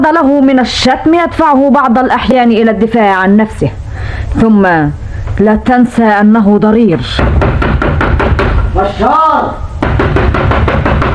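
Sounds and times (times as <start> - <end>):
speech: 0.0 - 7.4, 8.8 - 9.7
knocking on a door: 7.2 - 8.7, 9.8 - 11.1.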